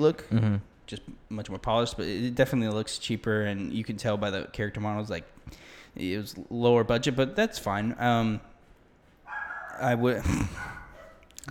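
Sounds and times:
speech: 0:00.0 - 0:08.5, 0:09.8 - 0:10.8
dogs barking: 0:09.3 - 0:11.3.

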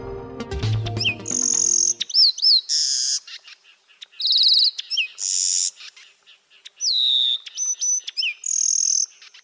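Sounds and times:
sedge wren singing: 0:01.0 - 0:09.4.

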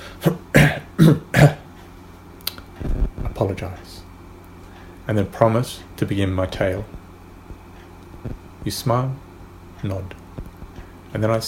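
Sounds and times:
person with a dry harsh cough: 0:00.3 - 0:01.7
small throat clearing: 0:00.6 - 0:01.7
speech: 0:01.0 - 0:01.6, 0:05.2 - 0:07.0, 0:08.7 - 0:09.2, 0:09.8 - 0:10.2, 0:11.1 - 0:11.4.

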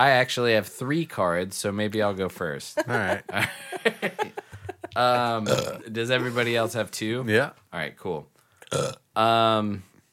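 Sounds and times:
speech: 0:00.0 - 0:04.3, 0:05.0 - 0:09.9
laughter: 0:02.8 - 0:05.4, 0:06.0 - 0:06.8
loud deep resonant burp: 0:05.3 - 0:05.9, 0:08.6 - 0:09.1.

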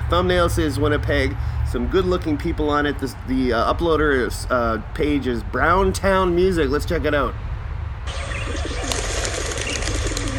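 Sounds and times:
speech: 0:00.1 - 0:07.5
faint flutter of pigeon wings: 0:08.1 - 0:10.3
pigeons cooing: 0:08.1 - 0:10.3.

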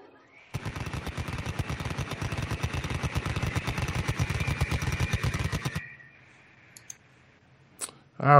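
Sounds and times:
rapid gunfire from a rotary cannon: 0:00.5 - 0:05.8.

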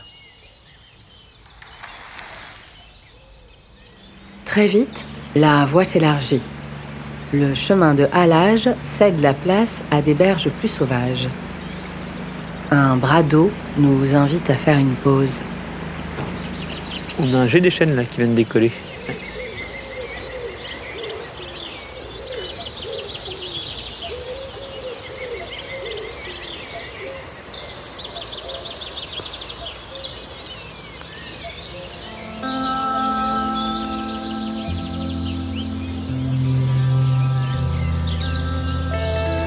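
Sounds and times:
chorus of marsh birds chirping and trilling in a marsh by the Rance river: 0:00.0 - 0:39.4
steady low droning hum: 0:03.7 - 0:17.7, 0:31.7 - 0:39.4
speech: 0:04.5 - 0:06.6, 0:07.3 - 0:11.5, 0:12.7 - 0:15.6, 0:17.2 - 0:19.2.

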